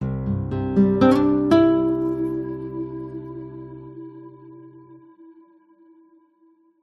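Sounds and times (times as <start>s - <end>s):
warm positive nylon acoustic guitar branding intro: 0.0s - 5.1s.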